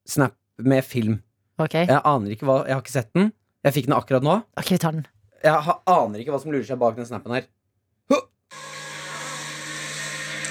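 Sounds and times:
speech: 0:00.1 - 0:08.7
vacuum cleaner running: 0:08.5 - 0:10.4.

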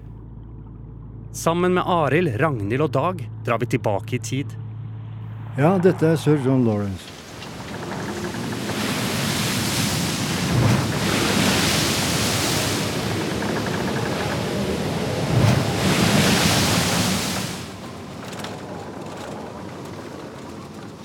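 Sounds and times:
speech: 0:01.3 - 0:04.6, 0:05.6 - 0:07.2
gusting wind in a strong storm: 0:05.4 - 0:21.0
rough sea surf roaring in a strong storm: 0:05.6 - 0:21.0
waves surging and breaking in broad swells: 0:05.6 - 0:21.0.

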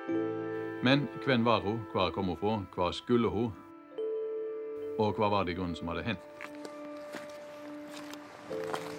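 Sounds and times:
speech: 0:00.1 - 0:03.6, 0:05.0 - 0:06.5
soft crunching footsteps walking into a valley: 0:06.1 - 0:08.9.

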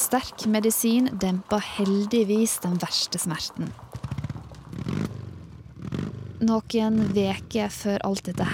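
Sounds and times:
speech: 0:00.1 - 0:04.0, 0:06.4 - 0:08.5
motorcycle engine rumbling and revving on the road: 0:03.6 - 0:08.5.

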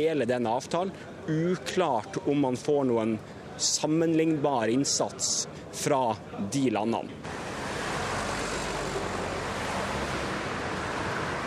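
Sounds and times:
speech: 0:00.0 - 0:07.5
dense city traffic roar between skyscrapers: 0:03.2 - 0:11.4.

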